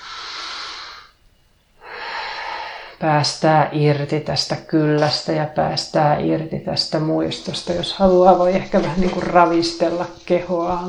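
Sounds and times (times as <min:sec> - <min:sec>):
person breathing deeply in and out: 0:00.0 - 0:01.2, 0:01.8 - 0:03.0
speech: 0:03.0 - 0:10.8.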